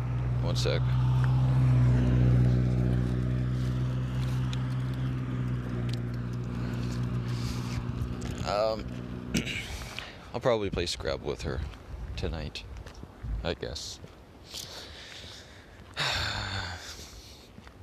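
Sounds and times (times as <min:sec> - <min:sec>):
mail truck driving past: 0:00.0 - 0:10.2
speech: 0:00.4 - 0:01.6, 0:08.5 - 0:09.6, 0:10.3 - 0:12.7, 0:13.4 - 0:14.7.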